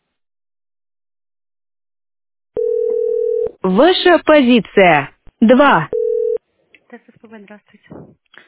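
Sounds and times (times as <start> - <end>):
telephone line tone after the other party hangs up: 2.6 - 3.6, 5.9 - 6.4
speech: 3.6 - 6.0, 6.9 - 8.4.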